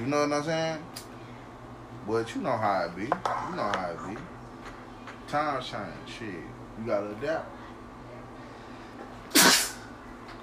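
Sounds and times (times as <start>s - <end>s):
speech: 0.0s - 1.1s, 2.0s - 4.4s, 5.3s - 7.6s
person sneezing: 9.3s - 9.9s.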